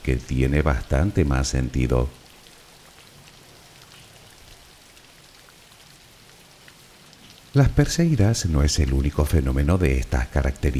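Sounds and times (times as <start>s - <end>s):
speech: 0.0s - 2.2s, 7.6s - 10.7s
steady rain falling: 0.0s - 10.7s.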